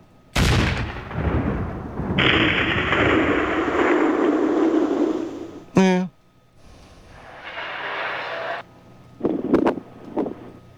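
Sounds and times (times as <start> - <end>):
loud explosion rolling into a roaring rumble: 0.4 - 5.7, 6.6 - 8.6
brief sharp crack: 0.4 - 5.8, 6.6 - 10.5
quick blasts: 0.4 - 5.8, 6.6 - 10.4.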